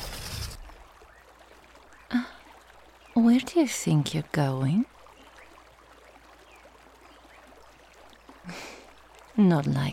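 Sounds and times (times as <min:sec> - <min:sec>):
flowing water at a bathhouse beyond some trees: 0:00.0 - 0:09.9
speech: 0:03.2 - 0:04.9, 0:09.4 - 0:09.9.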